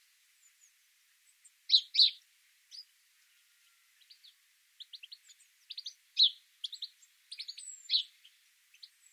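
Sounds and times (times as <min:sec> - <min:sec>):
house sparrow chirping: 0:01.7 - 0:02.9, 0:04.0 - 0:09.1.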